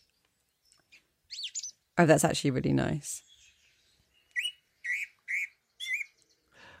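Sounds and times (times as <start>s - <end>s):
bright bird chirps and whistled calls: 0.6s - 1.8s, 3.2s - 6.5s
speech: 2.0s - 3.3s.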